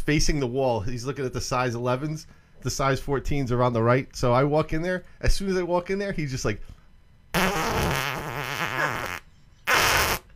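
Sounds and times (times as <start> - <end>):
speech: 0.1 - 6.8
voice blowing a raspberry imitating a fart: 7.4 - 10.3.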